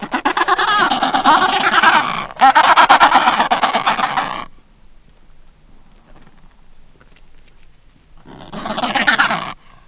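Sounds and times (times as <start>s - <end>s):
Adelie penguin giving harsh raspy bursts: 0.0s - 4.5s, 8.3s - 9.8s.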